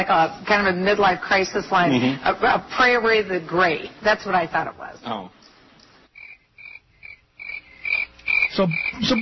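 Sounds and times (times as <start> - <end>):
speech: 0.0 - 5.4, 8.6 - 9.2
crickets chirping: 6.1 - 9.2.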